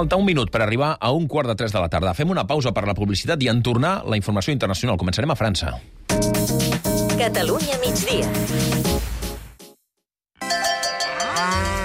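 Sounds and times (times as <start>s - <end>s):
speech: 0.0s - 8.9s
dairy cow mooing: 10.9s - 11.8s.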